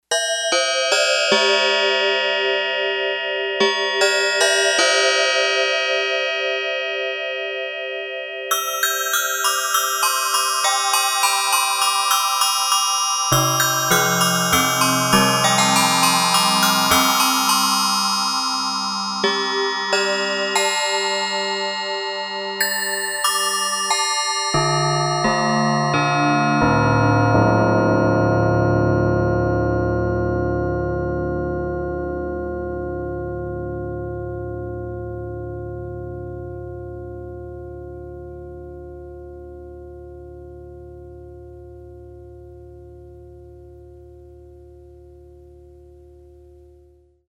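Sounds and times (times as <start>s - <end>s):
tubular bells on a Yamaha TX802 synthesizer: 0.2s - 37.9s.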